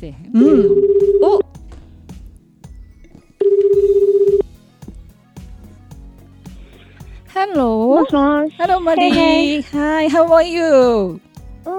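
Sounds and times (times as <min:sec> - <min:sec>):
speech: 0:00.0 - 0:01.5, 0:07.5 - 0:11.7
electronic beep of a telephone call being dialed: 0:00.4 - 0:01.4, 0:03.0 - 0:04.5.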